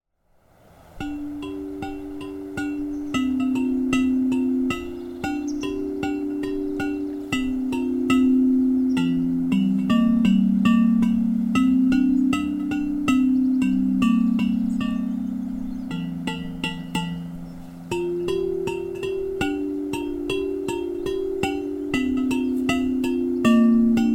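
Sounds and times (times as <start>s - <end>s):
tubular bells: 0.9s - 24.1s.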